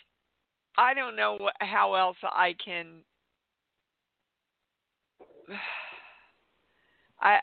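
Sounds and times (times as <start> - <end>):
speech: 0.8 - 3.1, 5.5 - 5.8, 7.2 - 7.4
heavy breathing during a breathing exercise: 5.2 - 7.2.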